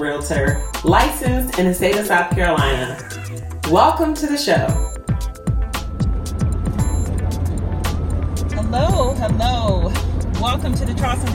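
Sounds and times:
speech: 0:00.0 - 0:04.9, 0:08.7 - 0:11.3
road rumble inside a moving car: 0:05.6 - 0:11.3.

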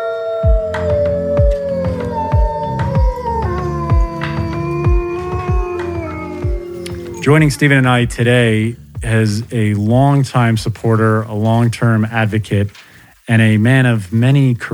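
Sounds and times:
wolves howling: 0:00.0 - 0:08.1
steady pounding drumbeat: 0:00.4 - 0:10.8
speech: 0:07.2 - 0:14.7.

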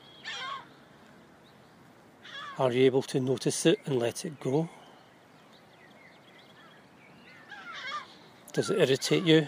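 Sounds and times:
faint hiss: 0:00.0 - 0:09.4
gull giving a harsh squawking call: 0:00.2 - 0:00.7, 0:02.2 - 0:02.6, 0:07.4 - 0:08.3
speech: 0:02.6 - 0:04.8, 0:08.6 - 0:09.4.

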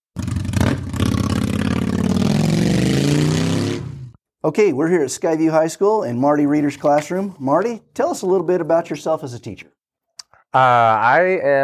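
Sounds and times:
car engine starting and revving as the car drives off: 0:00.6 - 0:03.9
speech: 0:04.4 - 0:09.8, 0:10.5 - 0:11.6.

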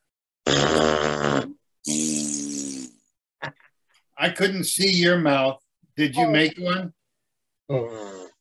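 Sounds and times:
people making mouth-made fart noises, buzzing raspberries: 0:00.4 - 0:03.1, 0:07.7 - 0:08.3
speech: 0:04.3 - 0:07.0, 0:07.7 - 0:08.2.

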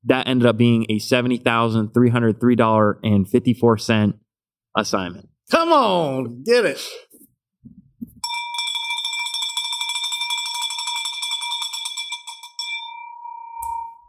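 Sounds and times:
speech: 0:00.0 - 0:04.2, 0:04.8 - 0:07.8
bell rung rapidly in celebration: 0:08.2 - 0:14.0.

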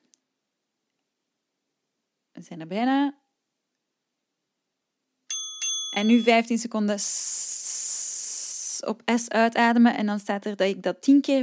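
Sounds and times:
speech: 0:02.4 - 0:03.2, 0:06.0 - 0:07.6, 0:08.8 - 0:11.4
interval timer app electronic bell chimes: 0:05.3 - 0:06.6.

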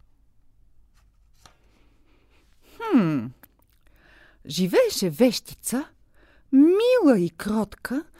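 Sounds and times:
picture book page being turned: 0:00.9 - 0:01.9
speech: 0:04.4 - 0:08.1.

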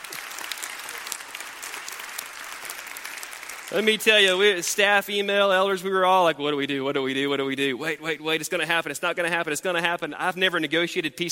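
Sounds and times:
audience applause in a church: 0:00.0 - 0:04.6
speech: 0:03.7 - 0:11.3.

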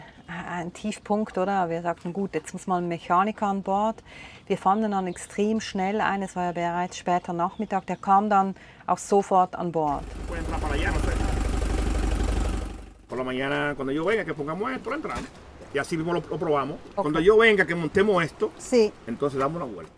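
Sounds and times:
speech: 0:00.6 - 0:11.2, 0:13.2 - 0:19.9
boat engine idling with a low rumbling drone: 0:09.9 - 0:13.1.

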